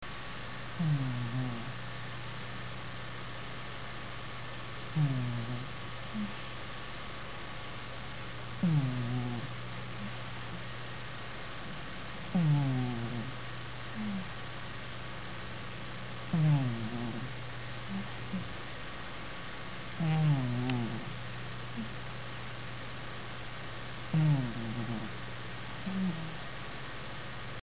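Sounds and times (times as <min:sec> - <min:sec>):
tomcat snoring: 0:00.8 - 0:01.8, 0:04.9 - 0:06.4, 0:08.6 - 0:10.1, 0:12.3 - 0:13.4, 0:14.0 - 0:14.3, 0:16.3 - 0:18.5, 0:20.0 - 0:21.1, 0:24.1 - 0:25.2, 0:25.8 - 0:26.4.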